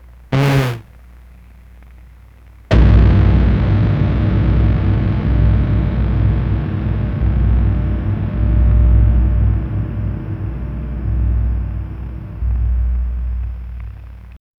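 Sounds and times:
deep futuristic cannon: 2.7s - 14.4s.

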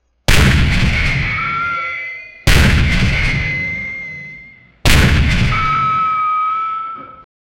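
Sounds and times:
fire burning: 0.3s - 1.7s, 2.5s - 4.0s, 4.8s - 5.8s
medieval war sounds: 0.3s - 6.5s.

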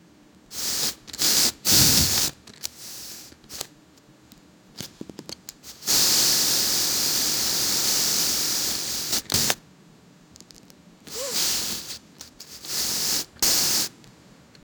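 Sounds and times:
airbag deflating: 0.5s - 3.6s, 5.7s - 9.6s, 11.1s - 13.9s.

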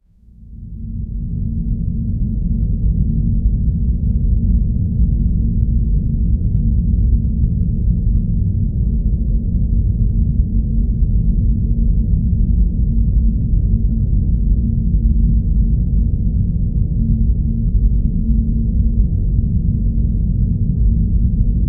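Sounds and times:
low dark ambient sound: 0.2s - 21.6s.

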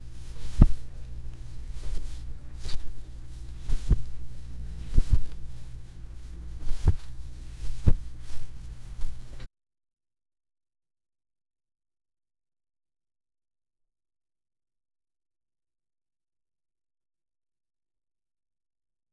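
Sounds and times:
light cloth movement: 0.0s - 9.5s.

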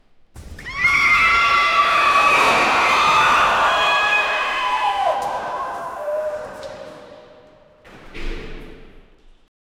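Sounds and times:
panic at an indoor swimming pool: 0.7s - 7.4s.

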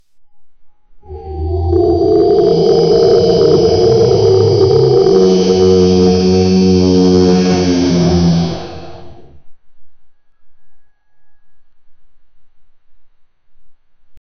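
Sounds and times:
distorted roar of pain: 1.0s - 9.3s.

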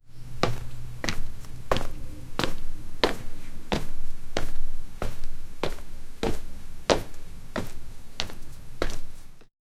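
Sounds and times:
footsteps walking foley: 0.3s - 9.5s.

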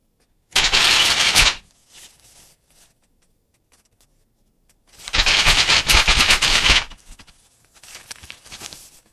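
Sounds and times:
newspaper rustling: 0.6s - 3.0s, 4.9s - 9.1s.

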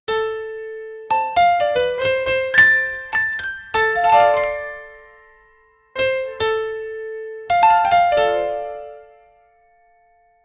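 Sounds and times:
cute piano jingle: 0.1s - 10.4s.

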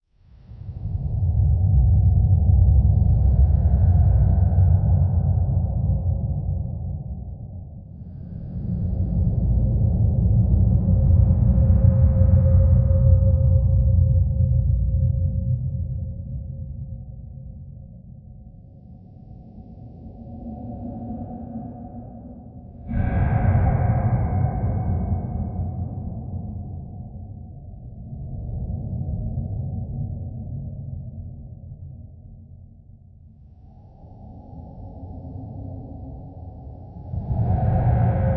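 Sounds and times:
scary ambient sound: 1.2s - 31.9s, 33.5s - 38.3s.

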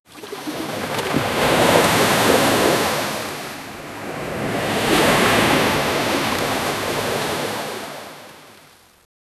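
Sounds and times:
ocean waves crashing: 0.1s - 8.9s.

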